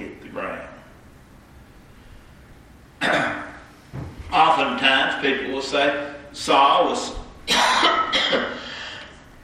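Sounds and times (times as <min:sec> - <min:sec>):
harsh loud coughs trailing into a rasp: 0:03.0 - 0:03.6, 0:07.5 - 0:08.7
speech: 0:04.8 - 0:07.2.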